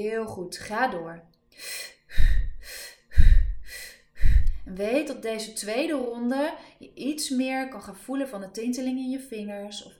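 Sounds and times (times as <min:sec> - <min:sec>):
speech: 0:00.0 - 0:02.3, 0:04.7 - 0:09.9
rapid rhythmic breathing in and out: 0:01.6 - 0:04.7.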